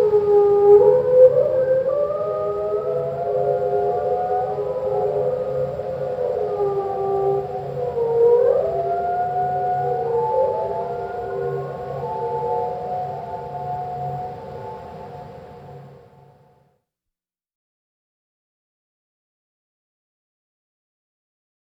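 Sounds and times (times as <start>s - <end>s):
single humpback whale song slowed down: 0.0s - 16.7s.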